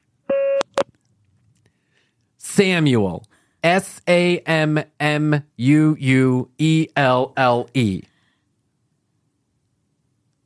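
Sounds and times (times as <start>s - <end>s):
phone recording prompt beep: 0.3s - 0.8s
speech: 2.6s - 8.1s.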